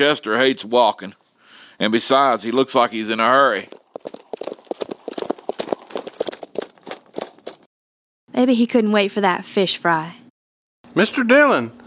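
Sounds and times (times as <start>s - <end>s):
speech: 0.0s - 1.2s, 1.8s - 4.2s, 8.4s - 10.2s, 11.0s - 11.8s
horse hooves clip-clopping as a rider approaches on horseback: 2.7s - 7.7s.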